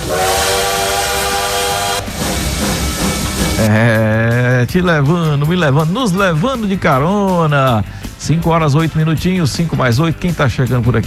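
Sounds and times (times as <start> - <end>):
steam train whistle blowing: 0.0 - 3.8
rumbling rail noise of a steam train: 0.0 - 11.0
speech: 3.6 - 4.1, 4.7 - 11.0.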